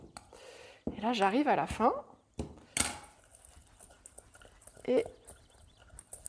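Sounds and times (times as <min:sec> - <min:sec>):
speech: 0:01.0 - 0:02.1, 0:04.9 - 0:05.2
cauliflower wings tossed in crushed cornflakes in a mixing bowl: 0:03.1 - 0:06.2.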